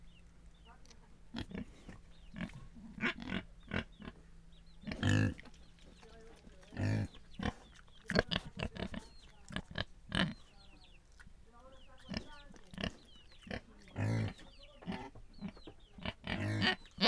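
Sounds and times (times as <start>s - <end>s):
pig grunts and snorts: 1.3s - 4.2s, 4.8s - 5.5s, 6.6s - 10.5s, 12.0s - 17.0s.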